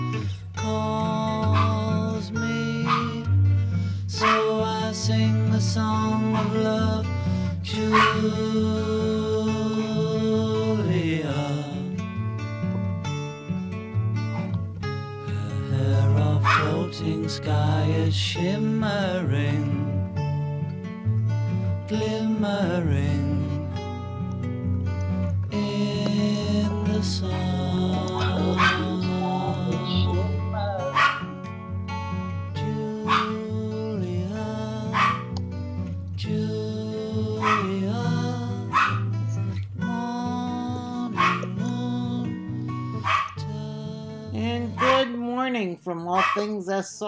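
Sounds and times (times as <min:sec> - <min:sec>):
music: 0:00.0 - 0:46.4
dog barking: 0:01.5 - 0:01.9, 0:02.8 - 0:03.2, 0:04.2 - 0:04.6, 0:06.2 - 0:06.7, 0:07.8 - 0:08.4, 0:16.4 - 0:16.9, 0:27.3 - 0:31.4, 0:33.0 - 0:33.4, 0:34.9 - 0:35.4, 0:37.4 - 0:37.8, 0:38.6 - 0:39.2, 0:41.1 - 0:41.6, 0:43.0 - 0:43.4, 0:44.8 - 0:45.2, 0:46.2 - 0:46.5
speech: 0:05.1 - 0:09.0, 0:46.4 - 0:47.0.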